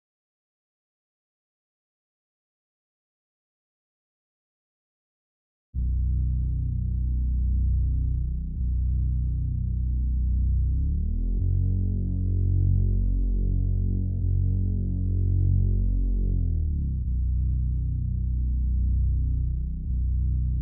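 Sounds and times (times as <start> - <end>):
bass loop in F minor: 5.8 - 20.6.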